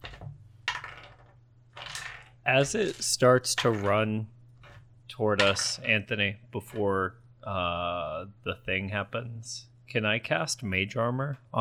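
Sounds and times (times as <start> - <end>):
dice rolling on a hard tabletop: 0.0 - 4.0, 4.6 - 5.8
speech: 2.4 - 4.4, 5.1 - 11.5.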